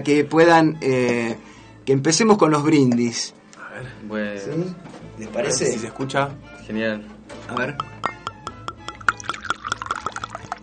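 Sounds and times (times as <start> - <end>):
speech: 0.0 - 7.9
liquid poured into two small glasses in a radio studio: 7.8 - 10.6.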